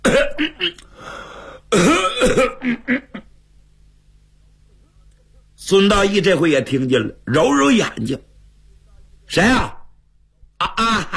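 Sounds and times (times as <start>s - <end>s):
man clearing throat and coughing: 0.0s - 0.8s, 1.7s - 3.2s, 10.6s - 11.1s
speech: 5.7s - 8.3s, 9.3s - 9.8s, 10.6s - 11.1s.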